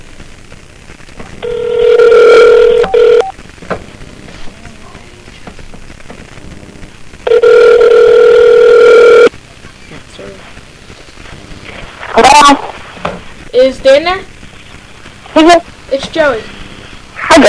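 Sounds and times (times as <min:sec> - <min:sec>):
phone ringback tone on an outgoing call: 0:01.4 - 0:03.3, 0:07.3 - 0:09.3
speech: 0:13.6 - 0:14.3, 0:15.4 - 0:16.5.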